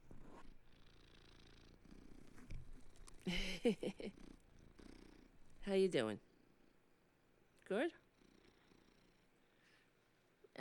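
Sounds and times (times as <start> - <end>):
cat purring: 0.0 - 6.8, 8.0 - 9.6
speech: 3.3 - 4.3, 5.6 - 6.3, 7.7 - 8.0.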